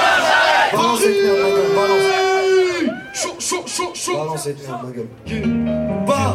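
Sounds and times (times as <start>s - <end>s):
concert crowd in Paris shouting a call-and-response chant: 0.0s - 3.8s
dense concert crowd noise: 0.0s - 6.3s
amplified voice calling at a concert in Paris: 0.7s - 6.3s.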